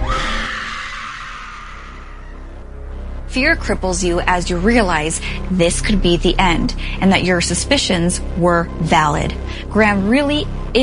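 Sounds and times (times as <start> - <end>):
person screaming: 0.0 - 2.6
speech: 3.4 - 10.8.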